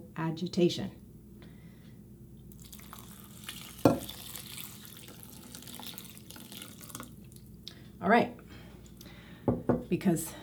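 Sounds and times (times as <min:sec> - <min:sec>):
speech: 0:00.2 - 0:01.0, 0:08.0 - 0:08.4, 0:09.9 - 0:10.4
kombucha pouring into a bowl of oats: 0:02.5 - 0:07.6.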